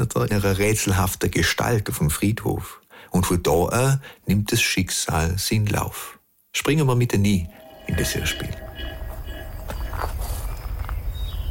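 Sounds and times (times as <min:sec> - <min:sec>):
speech: 0:00.0 - 0:08.7
slow footsteps along rows of graves in a village cemetery: 0:07.5 - 0:11.2.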